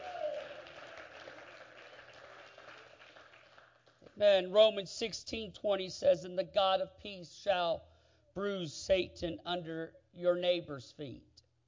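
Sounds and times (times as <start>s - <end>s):
audience applauding: 0.0s - 4.2s
speech: 4.2s - 11.3s.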